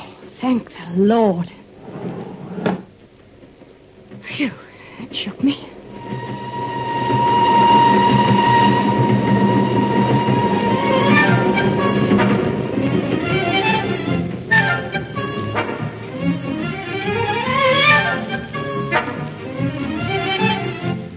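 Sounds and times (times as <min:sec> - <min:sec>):
speech: 0:00.4 - 0:02.7, 0:04.4 - 0:05.7
train rumbling on rails: 0:01.7 - 0:20.9
metallic whines of a train on rails: 0:05.7 - 0:18.8
dense low roar of a train: 0:05.8 - 0:15.0
sharp squeals and clanks of a train: 0:05.9 - 0:15.6.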